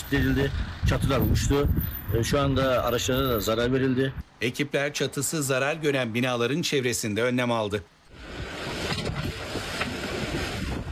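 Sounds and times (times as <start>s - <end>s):
strong wind in a village during a windstorm roaring into a mobile phone camera microphone: 0.0s - 4.2s, 8.1s - 10.9s
speech: 0.1s - 8.0s.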